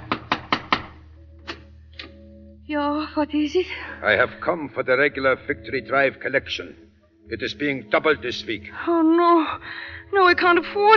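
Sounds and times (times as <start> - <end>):
knocking on a wooden front door: 0.0 - 1.0
speech: 2.7 - 10.9.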